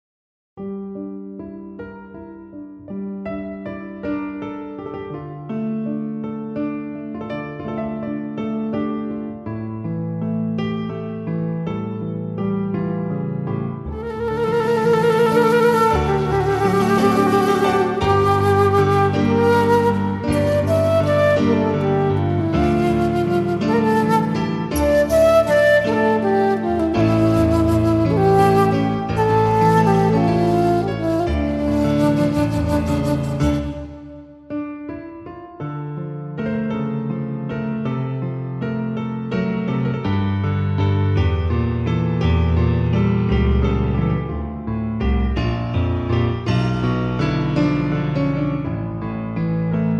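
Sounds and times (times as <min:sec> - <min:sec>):
piano: 0:00.6 - 0:49.9
flute: 0:13.8 - 0:34.7.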